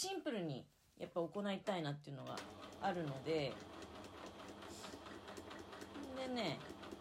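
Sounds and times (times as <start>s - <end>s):
speech: 0.0s - 3.8s, 6.2s - 6.9s
sewing machine stitching a zigzag seam: 2.3s - 6.9s.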